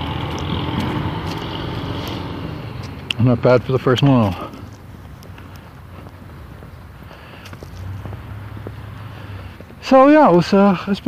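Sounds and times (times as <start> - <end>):
broadband road noise: 0.0 - 11.0
heavy delivery truck engine rumbling: 0.0 - 11.0
speech: 3.2 - 4.5, 9.9 - 11.0.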